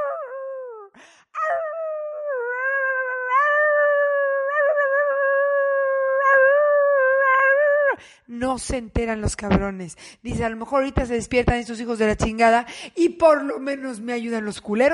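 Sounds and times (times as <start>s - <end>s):
puppy crying and howling: 0.0s - 8.0s
speech: 8.4s - 14.9s.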